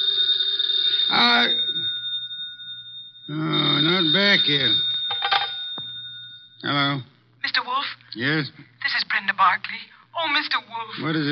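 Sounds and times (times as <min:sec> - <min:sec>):
telephone bell ringing: 0:00.0 - 0:06.8
speech: 0:04.0 - 0:04.9, 0:08.2 - 0:11.3.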